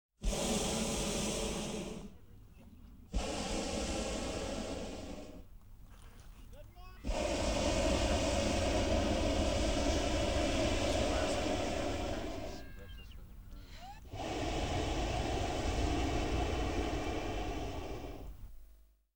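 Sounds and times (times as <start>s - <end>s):
hot air balloon rising: 0.2s - 18.7s.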